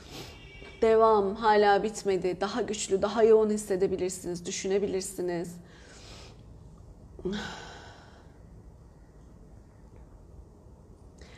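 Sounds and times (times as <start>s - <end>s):
quiet hum: 0.0s - 11.3s
speech: 0.8s - 5.7s, 7.2s - 7.7s
person yawning: 7.2s - 8.0s.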